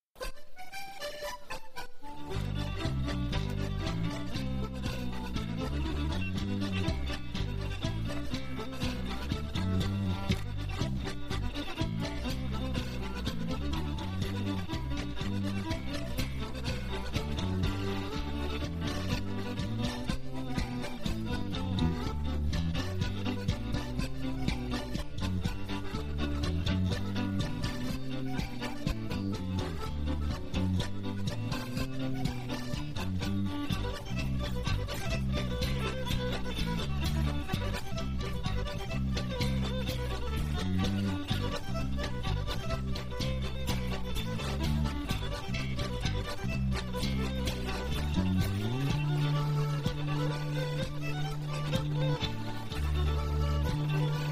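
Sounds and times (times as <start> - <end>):
instrumental English polka: 0.0 - 54.2.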